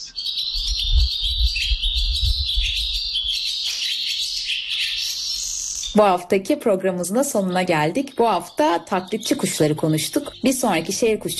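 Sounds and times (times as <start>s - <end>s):
collared pratincole calls: 0.0s - 6.2s, 6.9s - 11.3s
low wind-like rumble: 0.6s - 3.3s
speech: 6.0s - 11.3s.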